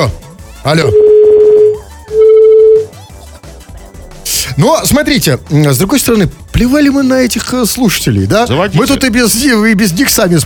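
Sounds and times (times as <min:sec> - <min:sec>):
speech: 0:00.0 - 0:01.2, 0:04.6 - 0:10.4
telephone line electronic ring tones through the handset: 0:00.9 - 0:03.0.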